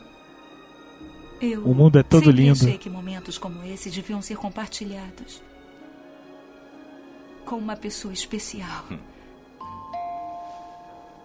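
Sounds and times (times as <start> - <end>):
speech: 1.4 - 5.5, 7.5 - 9.1
doorbell two-note ding-dong chime: 9.6 - 11.1.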